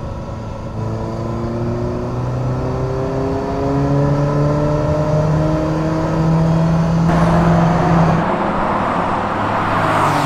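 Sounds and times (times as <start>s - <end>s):
Ferrari Mondial T engine revving through the gears while driving: 0.7s - 10.2s.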